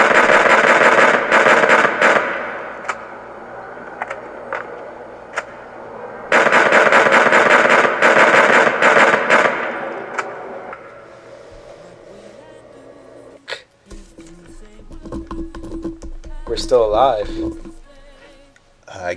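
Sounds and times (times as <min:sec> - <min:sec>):
rapid repeated gunshots, one person firing at another: 0:00.0 - 0:03.1, 0:06.3 - 0:10.8
people talking: 0:11.5 - 0:15.4, 0:16.3 - 0:19.1.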